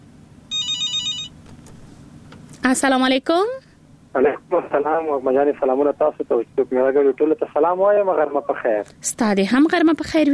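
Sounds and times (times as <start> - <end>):
low steady hum: 0.0 - 10.3
telephone ringing with an incoming call, bright warbling electronic ring: 0.5 - 1.4
speech: 2.6 - 10.3.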